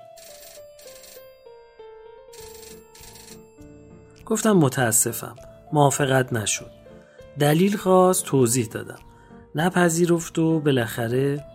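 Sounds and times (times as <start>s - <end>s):
telephone ringing with a bright electronic ringtone: 0.0s - 1.4s, 2.3s - 3.6s
speech: 4.3s - 6.8s, 7.4s - 11.5s.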